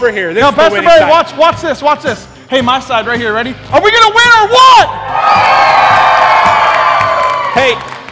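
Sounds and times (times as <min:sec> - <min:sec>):
speech: 0:00.0 - 0:05.5, 0:07.6 - 0:07.9
large audience cheering and shouting: 0:04.3 - 0:07.9.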